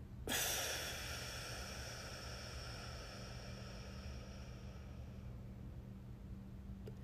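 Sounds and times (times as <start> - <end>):
low hum: 0.0 - 7.0
deep inhale, hold and exhale in a breathing exercise: 0.3 - 5.4.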